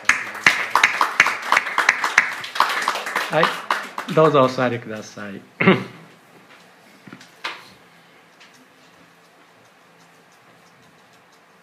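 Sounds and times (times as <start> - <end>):
group applauding in a room: 0.0 - 4.7
speech: 3.3 - 6.0.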